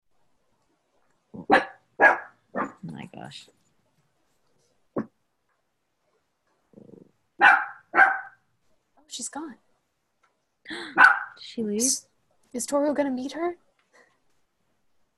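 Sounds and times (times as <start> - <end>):
dog barking: 1.4 - 2.8, 7.4 - 8.4, 10.9 - 11.4
speech: 3.3 - 3.6, 11.6 - 13.6.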